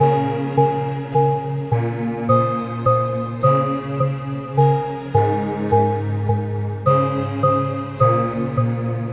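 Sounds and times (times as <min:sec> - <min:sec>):
A-m synth lead: 0:00.0 - 0:09.1.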